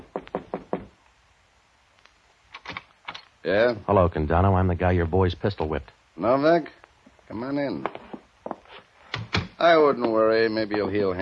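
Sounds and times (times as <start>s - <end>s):
firm knocking on an office door: 0.0s - 1.0s
speech: 3.4s - 8.0s, 9.6s - 11.2s.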